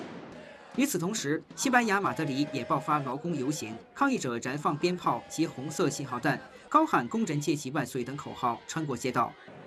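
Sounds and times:
protest crowd chanting slogans: 0.2 - 0.9, 1.5 - 9.6.

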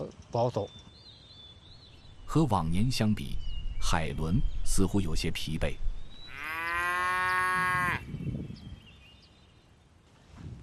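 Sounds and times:
speech: 0.3 - 0.8, 2.3 - 5.8
cow mooing in a herd of cattle: 6.3 - 8.0.

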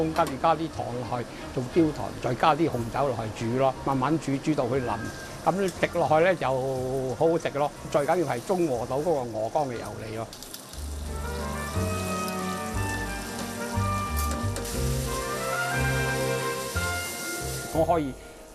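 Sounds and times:
soft music: 0.0 - 18.5
small cored apples sizzling as they fry in butter: 3.4 - 18.2.

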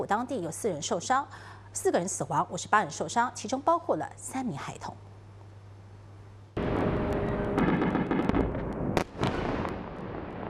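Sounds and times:
speech: 0.0 - 5.1
explosions from a Russian missile attack on Kyiv: 6.6 - 10.4
sharp cracks and bangs from a missile attack: 6.6 - 10.4.

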